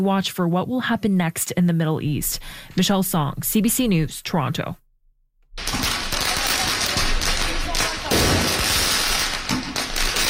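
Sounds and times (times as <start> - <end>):
speech: 0.0 - 4.8
firecrackers exploding at street protest: 5.5 - 10.2.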